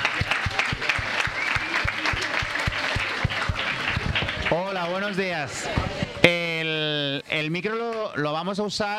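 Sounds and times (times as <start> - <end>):
audience clapping in a room: 0.0 - 5.3
speech: 4.5 - 8.9.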